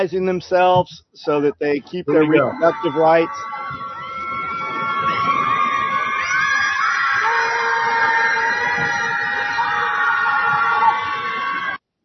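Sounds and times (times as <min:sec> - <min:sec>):
speech: 0:00.0 - 0:03.8
group of people screaming at a lake: 0:02.2 - 0:11.8.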